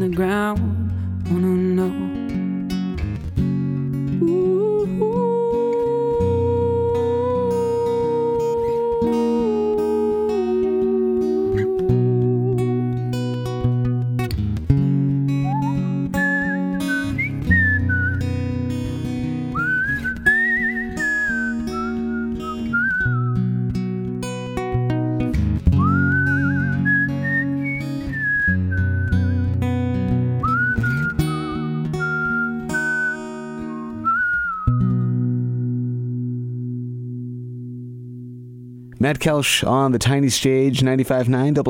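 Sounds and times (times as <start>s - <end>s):
speech: 0.0s - 2.0s, 39.1s - 41.6s
steady instrumental backing: 2.2s - 39.0s
whistled melody solo: 15.4s - 18.5s, 19.5s - 23.6s, 25.7s - 29.5s, 30.4s - 35.2s.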